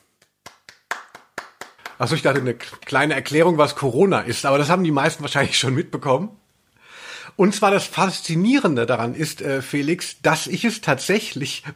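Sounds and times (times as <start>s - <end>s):
short applause of hands clapping: 0.0s - 3.4s
speech: 2.0s - 6.4s, 7.4s - 11.7s.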